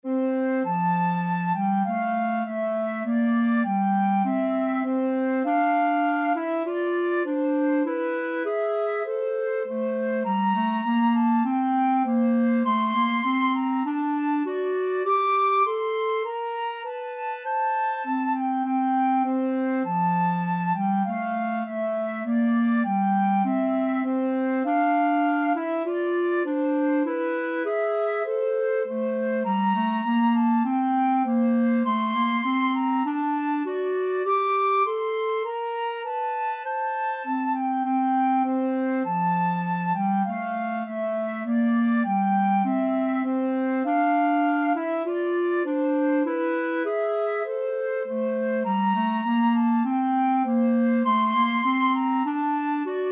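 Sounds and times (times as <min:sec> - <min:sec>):
flute and clarinet duet: 0:00.0 - 0:53.0.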